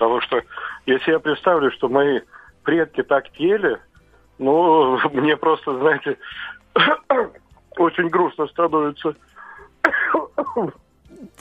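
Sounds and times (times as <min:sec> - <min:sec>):
speech: 0:00.0 - 0:11.3
laughter: 0:06.8 - 0:07.3
male caller coughing on a phone line: 0:06.8 - 0:07.5, 0:09.8 - 0:10.8.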